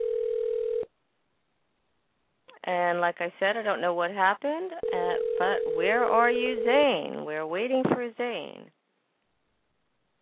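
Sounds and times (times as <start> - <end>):
telephone dial tone while dialing a call: 0.0 - 0.9, 4.8 - 6.9
speech: 2.7 - 8.8.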